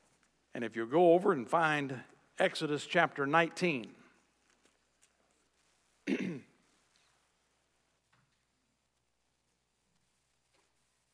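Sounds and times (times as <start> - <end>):
speech: 0.6 - 4.0
person coughing and clearing throat: 6.0 - 6.6.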